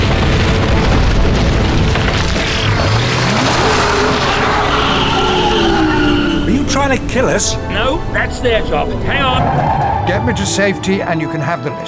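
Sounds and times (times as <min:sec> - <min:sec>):
grenade explosion: 0:00.0 - 0:08.2
speech: 0:06.9 - 0:11.8.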